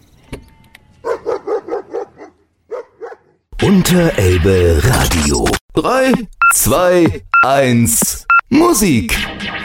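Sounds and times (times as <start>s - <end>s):
dog barking: 1.0s - 3.4s
speech: 3.7s - 9.6s.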